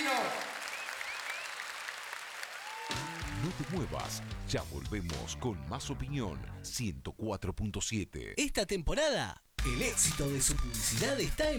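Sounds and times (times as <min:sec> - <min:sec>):
crowd applauding: 0:00.0 - 0:04.8
faint whistles: 0:00.6 - 0:01.7
speech: 0:03.4 - 0:11.5.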